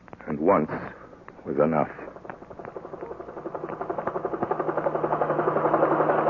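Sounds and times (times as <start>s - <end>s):
speech: 0.3s - 2.2s
helicopter engine whine: 0.8s - 6.2s
helicopter rotor thumping overhead: 1.1s - 6.2s.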